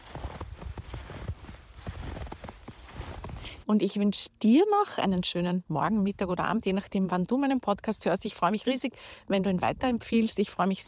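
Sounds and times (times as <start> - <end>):
footsteps crunching through snow: 0.0 - 3.6
speech: 3.7 - 10.8.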